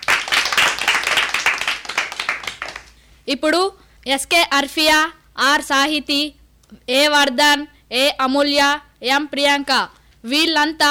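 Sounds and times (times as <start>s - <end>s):
class of children clapping applause: 0.0s - 3.0s
speech: 3.3s - 10.9s.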